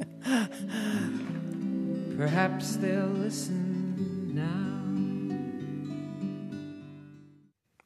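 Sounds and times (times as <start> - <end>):
sustained acoustic guitar: 0.0 - 7.6
male voice singing a gentle folk song: 0.3 - 5.8
speech: 2.2 - 3.8, 4.4 - 4.8.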